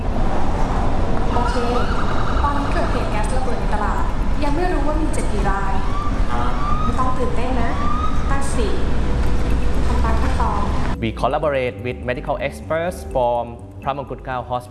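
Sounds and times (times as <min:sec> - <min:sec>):
road and engine noise of a moving ambulance: 0:00.0 - 0:12.1
indistinct voices: 0:00.0 - 0:14.6
ambulance siren wailing on the way to a gas explosion scene: 0:00.1 - 0:11.0
speech: 0:04.5 - 0:06.5, 0:10.4 - 0:14.6.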